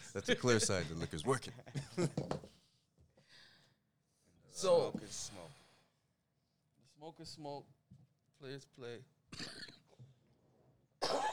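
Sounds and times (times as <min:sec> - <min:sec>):
speech: 0:00.2 - 0:02.6, 0:04.6 - 0:05.6, 0:07.0 - 0:09.8
person coughing harshly: 0:09.3 - 0:09.8, 0:11.0 - 0:11.3.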